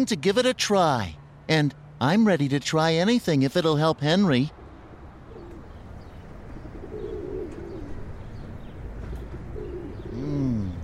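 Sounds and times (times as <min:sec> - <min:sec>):
speech: 0:00.0 - 0:04.6
steady outdoor hum: 0:00.0 - 0:10.8
pigeon cooing: 0:04.7 - 0:05.8, 0:06.4 - 0:08.4, 0:09.1 - 0:10.8.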